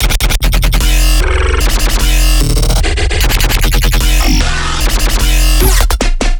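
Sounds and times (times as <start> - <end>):
dubstep bass loop in F at 150 bpm: 0.0 - 6.2.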